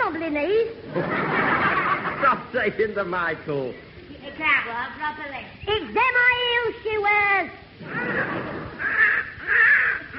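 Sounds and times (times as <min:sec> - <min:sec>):
speech: 0:00.3 - 0:01.4, 0:02.5 - 0:09.7
laughter: 0:00.8 - 0:02.9
young crow with an injured leg cawing: 0:07.9 - 0:10.1.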